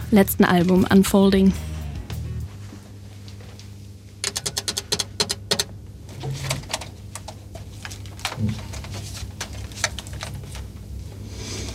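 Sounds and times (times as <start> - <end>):
steady low hum: 0.0 - 11.7
speech: 0.1 - 1.7
band's loop station pedal clicking: 4.2 - 5.8.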